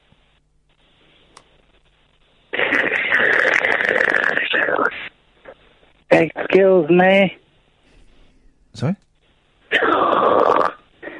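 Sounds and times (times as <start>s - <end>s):
harsh hissing static on a telephone line: 0.0s - 7.8s, 8.8s - 11.1s
speech: 6.2s - 7.4s, 8.8s - 9.0s.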